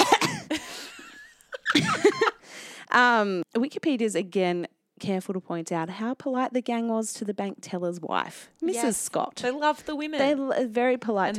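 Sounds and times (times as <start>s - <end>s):
person coughing: 0.0s - 0.8s
breathy laughter: 0.0s - 2.4s
speech: 2.9s - 11.3s.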